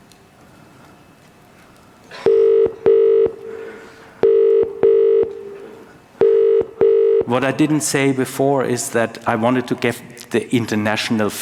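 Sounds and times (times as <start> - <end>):
British telephone ringing tone double buzzes: 2.1 - 5.6, 6.2 - 7.3
speech: 7.3 - 11.4.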